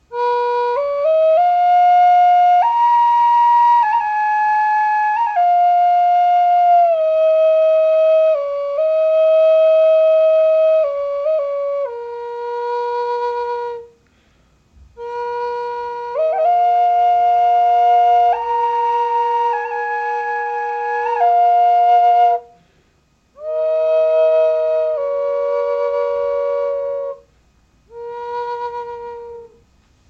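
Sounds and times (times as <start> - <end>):
walnut Native American double flute drone in high B at 432 Hz: 0.0 - 14.3, 14.9 - 22.7, 23.3 - 29.7.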